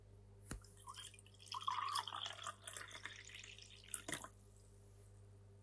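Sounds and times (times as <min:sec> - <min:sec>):
liquid pouring into a glass during a drinking challenge: 0:00.6 - 0:04.4.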